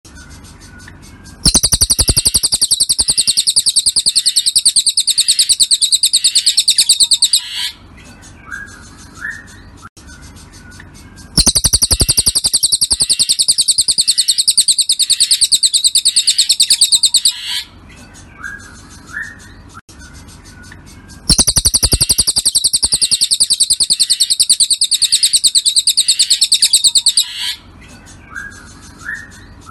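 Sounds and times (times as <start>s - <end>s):
birds chirping: 1.4s - 9.8s, 11.4s - 18.1s, 21.3s - 29.6s.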